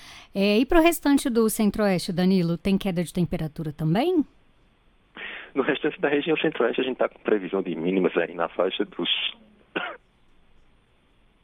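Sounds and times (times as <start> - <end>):
speech: 0.4 - 4.4, 5.5 - 10.0
single short cough: 9.8 - 10.1.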